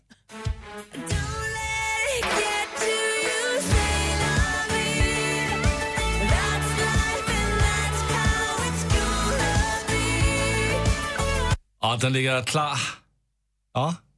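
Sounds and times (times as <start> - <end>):
pop song with a driving beat and layered instruments: 0.4 - 11.6
speech: 11.9 - 13.0, 13.8 - 14.0.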